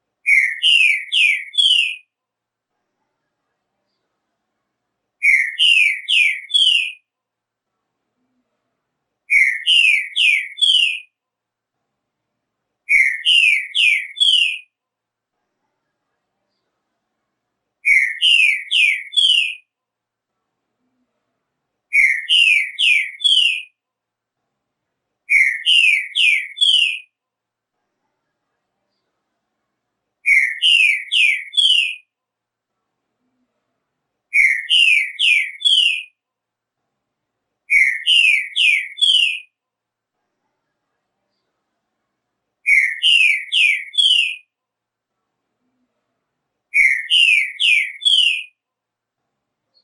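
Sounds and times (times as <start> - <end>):
Trinca Ferro singing: 0.2 - 2.1, 5.2 - 7.0, 9.3 - 11.1, 12.9 - 14.7, 17.8 - 19.7, 21.9 - 23.8, 25.3 - 27.1, 30.2 - 32.1, 34.3 - 36.2, 37.7 - 39.5, 42.7 - 44.5, 46.7 - 48.6.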